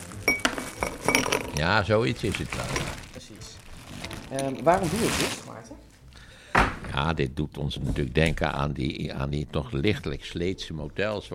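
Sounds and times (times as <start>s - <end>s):
ice cubes clinking into a glass: 0.2s - 1.7s
speech: 1.6s - 3.0s, 4.3s - 5.8s, 7.0s - 11.3s.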